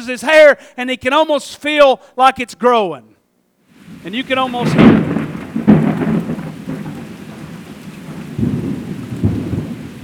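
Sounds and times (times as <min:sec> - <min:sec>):
speech: 0:00.0 - 0:03.1, 0:04.0 - 0:05.6
rain falling: 0:03.7 - 0:10.0
low thunder rumbling: 0:03.8 - 0:10.0.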